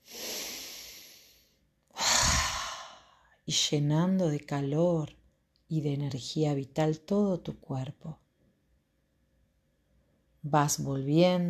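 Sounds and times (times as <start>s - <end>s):
forceful exhale in a guided relaxation exercise: 0.0s - 3.3s
long airy breath in a guided relaxation exercise: 0.0s - 3.3s
speech: 3.5s - 8.2s, 10.4s - 11.4s.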